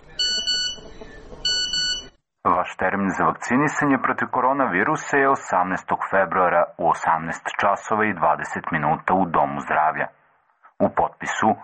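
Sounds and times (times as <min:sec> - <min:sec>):
phone text message alert tone: 0:00.2 - 0:00.9, 0:01.5 - 0:02.1
speech: 0:02.7 - 0:10.2, 0:10.8 - 0:11.6.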